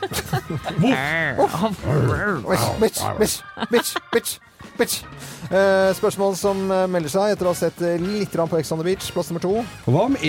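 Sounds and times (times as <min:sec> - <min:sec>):
laughter: 0:00.0 - 0:04.4
speech: 0:00.1 - 0:10.2
person imitating a dog barking: 0:00.7 - 0:04.0.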